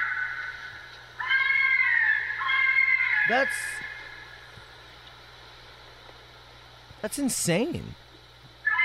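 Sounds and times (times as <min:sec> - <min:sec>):
fisher cat screaming in the woods: 0:01.2 - 0:04.2, 0:08.6 - 0:08.8
speech: 0:03.3 - 0:03.9, 0:07.0 - 0:08.0.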